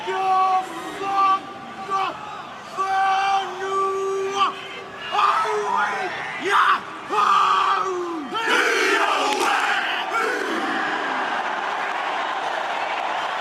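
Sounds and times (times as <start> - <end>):
sharp accented shouts of rugby players: 0.0 - 11.0
crowd noise: 0.0 - 13.3
rugby team of men chanting a haka war dance in unison: 8.4 - 11.0.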